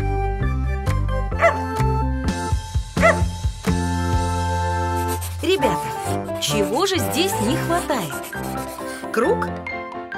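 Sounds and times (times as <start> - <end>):
music with plucked and sustained notes: 0.0 - 10.1
dog giving short bright barks: 1.4 - 1.6, 3.0 - 3.3
speech: 6.8 - 9.7.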